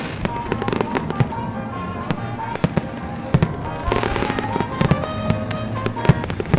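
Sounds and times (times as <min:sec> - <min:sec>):
fireworks display at a town festival in Le Touquet: 0:00.0 - 0:06.5.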